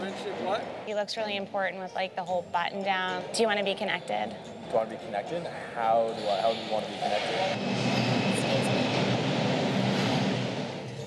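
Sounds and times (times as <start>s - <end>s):
subway train rumbling along the rails with low clattering: 0.0s - 1.0s, 5.8s - 11.0s
speech: 0.5s - 8.7s.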